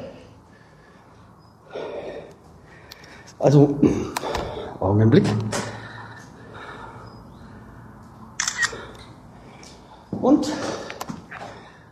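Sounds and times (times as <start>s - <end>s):
speech: 3.4s - 5.6s
camera shutter clicks from photos being taken: 8.4s - 9.0s.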